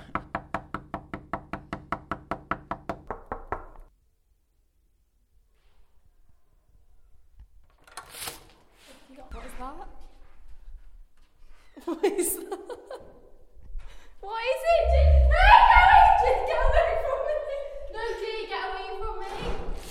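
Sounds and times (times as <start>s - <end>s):
knocking on a door: 0.1s - 3.9s
quieter scattered sounds: 14.6s - 18.2s.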